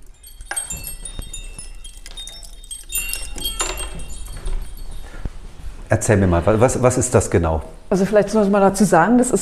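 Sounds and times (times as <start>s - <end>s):
bright metallic jingling and clinking of a sound-making birdhouse installation: 0.0s - 5.8s
speech: 5.9s - 9.3s.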